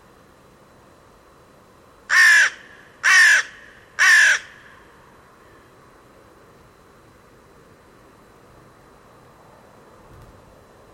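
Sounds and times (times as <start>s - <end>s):
bird giving harsh crow-like caws: 2.1s - 4.8s.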